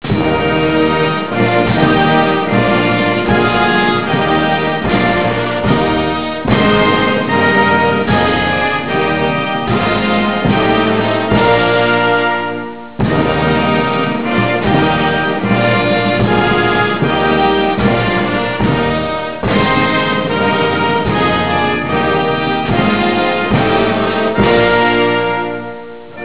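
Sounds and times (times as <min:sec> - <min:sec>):
national anthem: 0:00.0 - 0:26.2.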